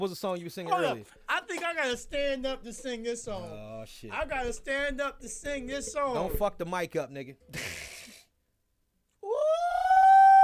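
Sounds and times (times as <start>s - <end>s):
speech: 0.0s - 7.7s
man howling like a wolf: 9.2s - 10.4s.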